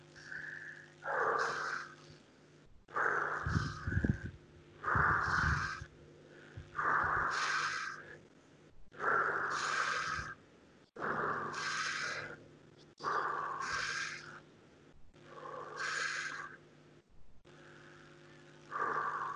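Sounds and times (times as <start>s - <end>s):
faint low hum: 0.0s - 19.3s
heavy breathing in through the nose and out through the mouth: 0.2s - 2.0s, 2.9s - 14.4s, 15.3s - 16.6s, 18.7s - 19.3s.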